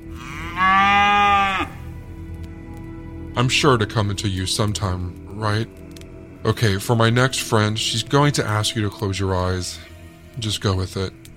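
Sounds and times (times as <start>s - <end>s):
cow mooing: 0.1s - 1.8s
speech: 3.4s - 5.8s, 6.4s - 11.2s.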